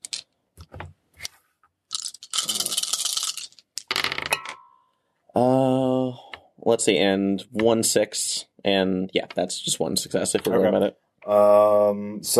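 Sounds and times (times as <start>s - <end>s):
five dice rolled during a tabletop role-playing game: 0.0s - 1.3s, 1.9s - 4.6s
sustained tonal voice-like sound: 2.4s - 2.8s, 5.4s - 6.4s, 11.3s - 12.3s
speech: 6.7s - 12.3s.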